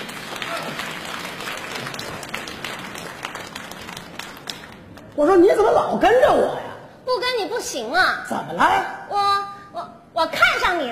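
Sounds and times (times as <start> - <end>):
audience applauding at a stage comedy show: 0.0 - 5.0
crowd noise: 0.0 - 5.2
speech: 5.2 - 9.4, 10.2 - 10.9.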